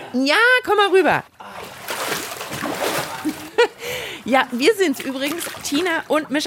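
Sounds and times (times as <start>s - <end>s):
speech: 0.1s - 1.3s, 4.2s - 6.4s
water splashing from people swimming in a swimming pool: 1.3s - 6.4s.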